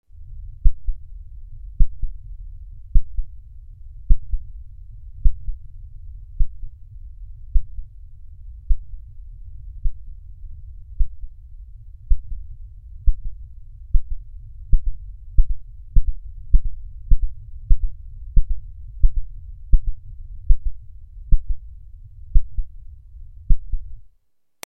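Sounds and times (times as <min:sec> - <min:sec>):
heartbeat sound from an XP-80 synthesizer: 0:00.6 - 0:01.1, 0:01.7 - 0:02.2, 0:02.9 - 0:03.4, 0:04.0 - 0:05.6, 0:06.4 - 0:06.8, 0:07.5 - 0:08.0, 0:08.6 - 0:09.1, 0:09.8 - 0:10.2, 0:10.9 - 0:11.4, 0:12.0 - 0:22.8, 0:23.4 - 0:24.0.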